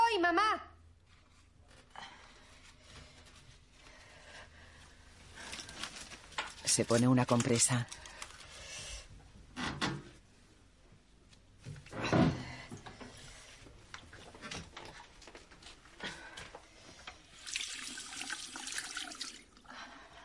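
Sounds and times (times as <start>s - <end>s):
speech: 0.2s - 0.7s, 6.8s - 8.0s
tap water running at a sink: 17.3s - 19.6s.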